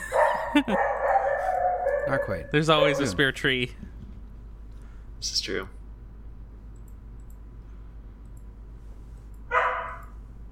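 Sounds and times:
low steady hum: 0.0s - 10.5s
female dog barking: 0.1s - 3.2s, 9.5s - 10.1s
speech: 0.6s - 0.9s, 2.1s - 3.8s, 5.2s - 5.8s.

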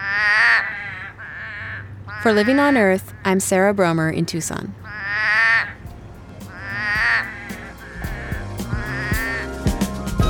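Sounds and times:
chorus of toads trilling at a pond: 0.0s - 3.4s, 4.8s - 9.6s
speech: 2.2s - 4.9s.

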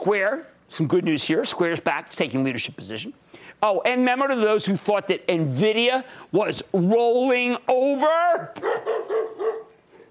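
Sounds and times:
speech: 0.0s - 9.0s
dog barking sound effect: 8.6s - 9.8s.

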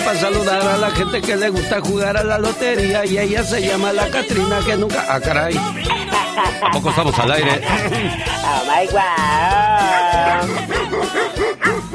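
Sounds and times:
speech: 0.1s - 11.9s
laughter: 4.0s - 11.9s
pet dog howling: 9.1s - 11.9s
pet dog barking sharply: 9.9s - 11.9s.

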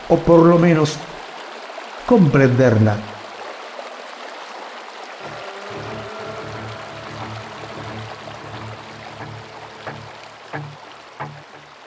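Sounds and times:
river water flowing: 0.0s - 11.8s
speech: 0.1s - 1.1s, 2.1s - 3.1s.

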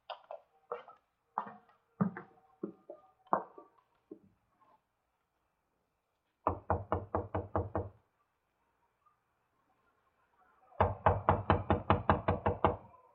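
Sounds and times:
loud firm knocking on a door: 6.5s - 8.0s, 10.8s - 12.8s.

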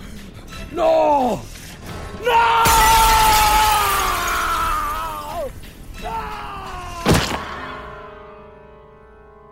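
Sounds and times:
speech: 0.7s - 1.5s
closed window glass shattering as a man's body smashes through: 2.6s - 5.4s.

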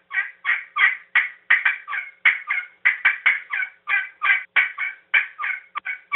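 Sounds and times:
turkey yelps and clucks blown on a game call: 0.0s - 6.1s.

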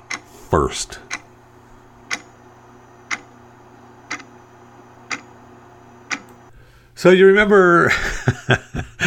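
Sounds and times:
clock ticking: 0.0s - 0.3s, 1.0s - 1.3s, 2.0s - 2.3s, 3.0s - 3.3s, 4.0s - 4.4s, 5.0s - 5.4s, 6.0s - 6.4s
speech: 0.5s - 1.1s, 7.0s - 8.9s
laughter: 7.9s - 9.0s.

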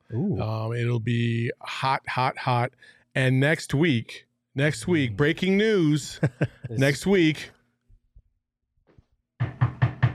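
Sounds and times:
speech: 0.1s - 7.6s
laughter: 6.1s - 7.0s
knocking on wood: 9.4s - 10.1s.

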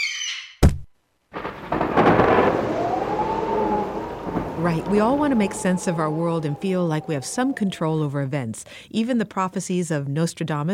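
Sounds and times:
thunder crack: 1.3s - 8.7s
rushing storm noise: 1.4s - 8.7s
speech: 4.6s - 10.7s.

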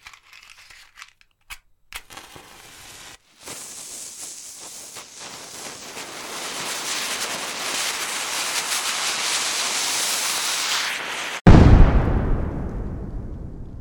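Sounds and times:
steady rushing hiss: 2.2s - 11.4s
loud deep explosion booming and rumbling: 11.5s - 13.7s.

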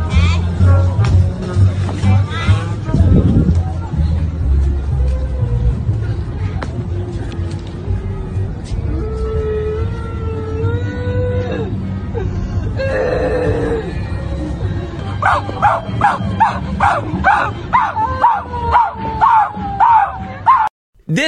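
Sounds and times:
busy noisy street background: 0.0s - 20.6s
grieving people wailing on a street: 8.1s - 20.6s
grieving people on a street imitating dog barks: 15.2s - 21.2s.

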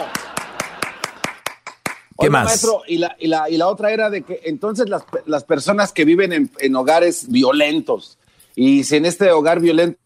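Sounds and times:
one person applauding with sharp hand claps: 0.0s - 2.2s
speech: 2.2s - 10.0s.

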